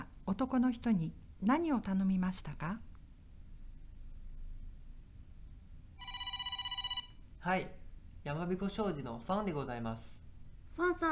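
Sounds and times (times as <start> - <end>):
low hum: 0.0 - 11.0
speech: 0.3 - 2.9, 7.4 - 10.2, 10.8 - 11.0
telephone ringing with a bright electronic trill: 6.0 - 7.3.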